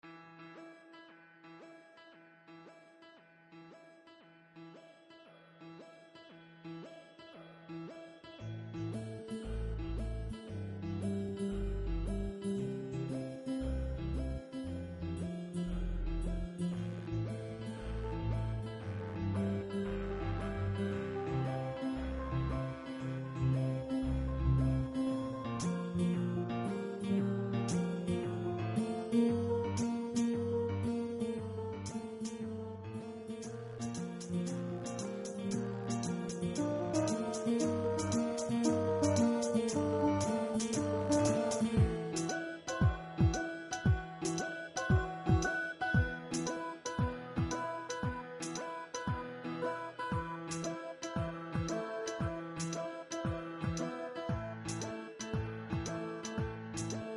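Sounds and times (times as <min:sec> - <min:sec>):
calm music: 0:00.0 - 0:57.1.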